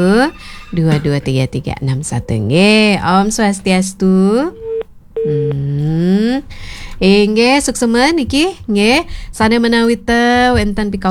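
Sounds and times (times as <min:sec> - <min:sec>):
speech: 0:00.0 - 0:04.6, 0:05.2 - 0:11.1
telephone busy tone after a call disconnects: 0:04.5 - 0:05.7.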